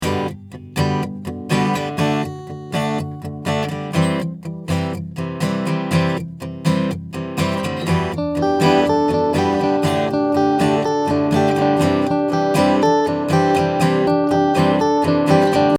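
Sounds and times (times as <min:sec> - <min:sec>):
acoustic guitar playing: 0:00.0 - 0:15.7.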